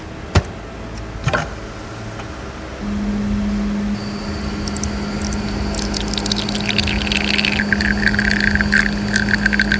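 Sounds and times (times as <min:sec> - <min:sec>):
coffee machine pump humming while brewing: 0:02.8 - 0:09.7
coffee pouring out of a coffee machine with hiss and sputtering: 0:04.0 - 0:09.7.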